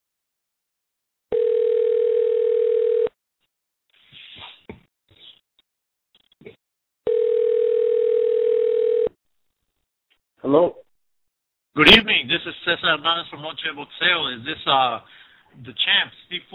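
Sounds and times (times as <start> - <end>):
telephone ringing tone while a call is placed: 1.3 - 3.1, 7.1 - 9.2
speech: 10.5 - 10.8, 11.8 - 16.5.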